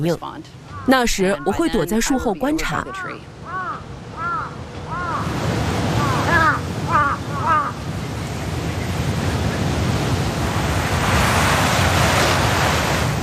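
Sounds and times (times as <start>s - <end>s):
speech: 0.0s - 3.3s
crows cawing in alarm at dead crow: 0.6s - 1.0s, 2.8s - 7.8s
steady rush of wind or surf-like noise: 4.8s - 13.2s.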